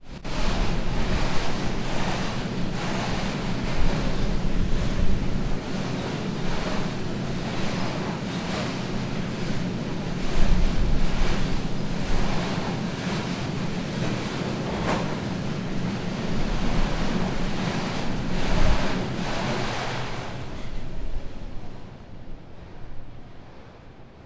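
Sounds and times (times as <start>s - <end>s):
freight train: 0.0s - 24.2s.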